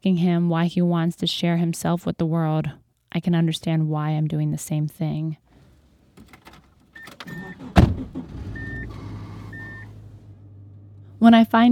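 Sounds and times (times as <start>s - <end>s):
speech: 0.0s - 5.4s, 11.2s - 11.7s
car engine rumbling: 5.4s - 11.7s
car door thudding shut: 6.2s - 9.7s
short electronic car warning chimes: 9.5s - 9.9s.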